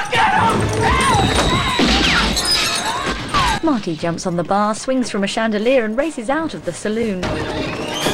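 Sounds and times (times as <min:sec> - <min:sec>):
crash with shattering as a person stumbles against a table: 0:00.1 - 0:03.6
speech: 0:03.7 - 0:08.0.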